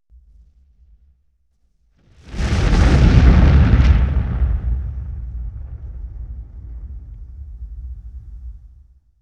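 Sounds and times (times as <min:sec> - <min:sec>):
explosion: 0:02.1 - 0:09.1.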